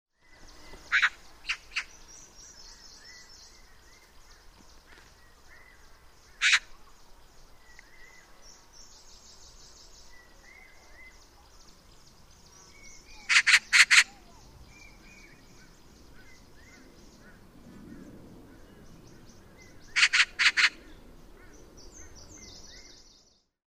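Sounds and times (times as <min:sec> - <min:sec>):
Oriental magpie calling: 0:00.9 - 0:01.9, 0:06.4 - 0:06.7, 0:13.1 - 0:14.4, 0:19.9 - 0:20.8.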